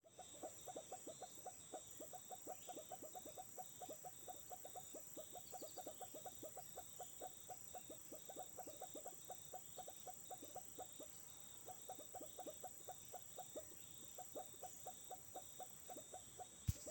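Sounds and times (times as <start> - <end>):
Leptodactylus guianensis frog: 0.0 - 16.9.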